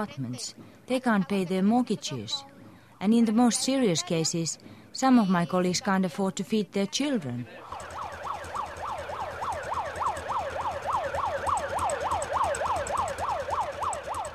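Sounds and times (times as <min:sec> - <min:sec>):
speech: 0:00.0 - 0:07.9
low rumble of traffic: 0:00.4 - 0:14.3
police motorbike escort siren yelping: 0:07.6 - 0:14.3.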